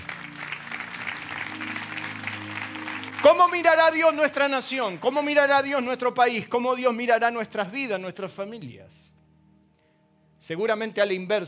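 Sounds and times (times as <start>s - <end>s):
large crowd clapping steadily and energetically: 0.0s - 5.3s
speech: 3.2s - 9.1s, 10.4s - 11.4s.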